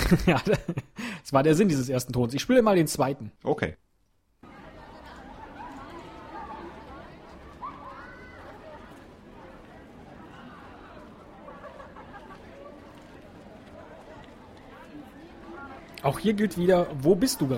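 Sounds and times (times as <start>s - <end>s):
laughter: 0.0s - 1.1s, 4.4s - 17.5s
speech: 0.1s - 3.9s, 16.0s - 17.5s
many children's voices babbling on an open school playground: 4.4s - 15.9s.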